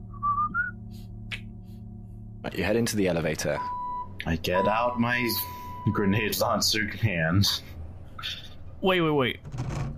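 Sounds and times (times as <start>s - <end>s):
low steady hum: 0.0s - 9.9s
person whistling a tune: 0.1s - 0.8s
speech: 2.4s - 9.8s.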